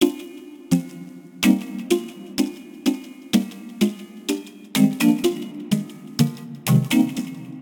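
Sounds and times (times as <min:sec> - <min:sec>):
tonal MIDI music clip in C minor at 126 bpm: 0:00.0 - 0:07.5.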